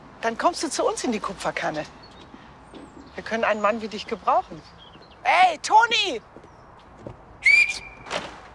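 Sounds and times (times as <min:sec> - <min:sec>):
speech: 0:00.2 - 0:02.0, 0:03.2 - 0:06.3
woman whistling: 0:07.5 - 0:08.0.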